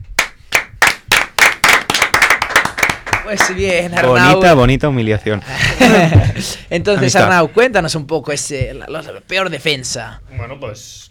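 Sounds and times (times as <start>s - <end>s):
people clapping around a table: 0.0s - 4.6s
speech: 3.3s - 11.0s
laughter: 5.4s - 7.2s.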